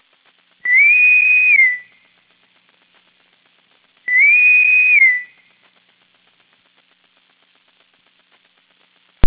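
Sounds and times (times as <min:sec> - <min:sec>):
boatswain whistle: 0:00.6 - 0:01.9, 0:04.1 - 0:05.4.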